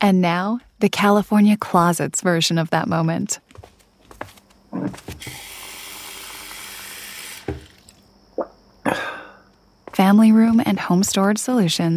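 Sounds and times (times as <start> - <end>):
speech: 0.0 - 3.7, 4.7 - 5.5, 10.0 - 11.9
tap running water into a glass: 7.4 - 7.9.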